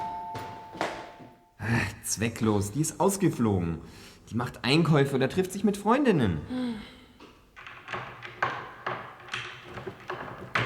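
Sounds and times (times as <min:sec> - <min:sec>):
doorbell two-tone chime: 0:00.0 - 0:01.4
speech: 0:01.7 - 0:07.0.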